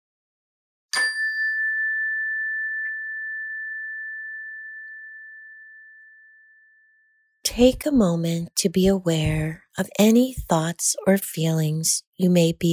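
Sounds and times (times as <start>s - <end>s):
meditation chime ringing: 1.0s - 7.4s
speech: 7.5s - 12.7s.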